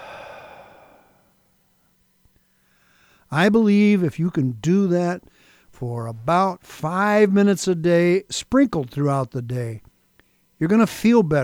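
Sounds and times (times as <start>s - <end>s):
slow exhale during a breathing exercise: 0.0s - 1.3s, 2.6s - 3.3s
speech: 3.3s - 9.9s, 10.6s - 11.4s.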